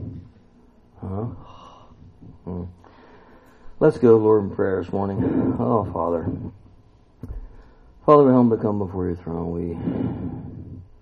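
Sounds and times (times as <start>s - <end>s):
heavy breathing into the microphone: 0.0s - 0.4s, 1.4s - 3.8s, 5.0s - 6.7s, 9.6s - 11.0s
quiet hissy background: 0.0s - 11.0s
speech: 3.8s - 6.5s, 8.1s - 10.4s.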